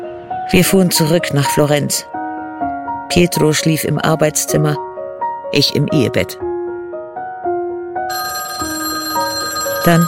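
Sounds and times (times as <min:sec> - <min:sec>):
speech: 0:00.5 - 0:02.2, 0:03.1 - 0:04.9, 0:05.5 - 0:06.5, 0:09.8 - 0:10.0
telephone ringing with an electronic ringtone: 0:08.1 - 0:10.0.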